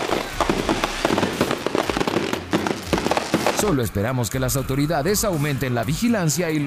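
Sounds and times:
fireworks crackling and popping: 0.0s - 4.0s
speech: 3.6s - 6.6s.

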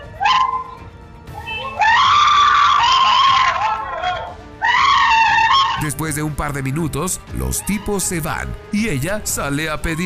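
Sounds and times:
jewelry store cashier screaming during a robbery: 1.4s - 5.8s
speech: 5.9s - 10.0s.

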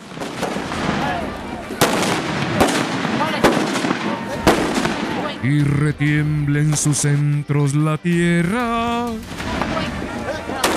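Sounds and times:
explosive blasts set off by striking a hammer on the ground at a saint's celebration: 0.0s - 5.4s
murmur of crowd noise and voices at a celebration in San Juan de la Vega Mexico: 0.0s - 10.7s
speech: 5.5s - 9.5s.

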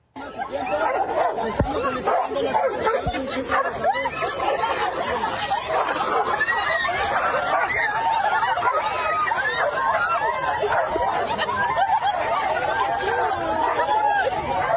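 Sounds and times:
laughter: 0.0s - 14.7s
noisy crowd of people chattering and calling out: 0.0s - 14.7s
two street dogs barking and snarling while fighting: 0.6s - 14.7s.

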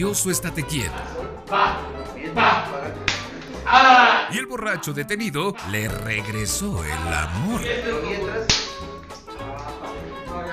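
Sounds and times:
speech: 0.0s - 8.9s
police officer slapping a detained man across the face: 3.0s - 3.5s, 8.5s - 8.9s.

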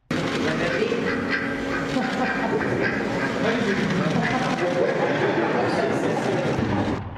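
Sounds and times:
crowd noise and overlapping voices: 0.0s - 7.1s
laughter: 0.4s - 7.0s
duck quacking: 0.6s - 5.2s.

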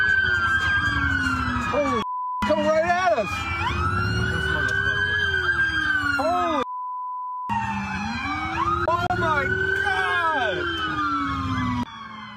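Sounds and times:
patrol car engines rumbling: 0.0s - 6.7s, 7.5s - 12.3s
police car sirens wailing and yelping during a chase in Ohio: 0.0s - 6.7s, 7.5s - 12.3s
steady beep tones: 6.6s - 7.5s.

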